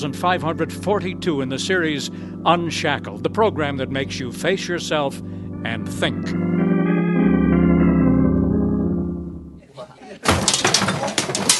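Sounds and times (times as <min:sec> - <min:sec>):
speech: 0:00.0 - 0:06.6
music: 0:00.0 - 0:09.6
falling breaking objects clattering: 0:10.2 - 0:11.5.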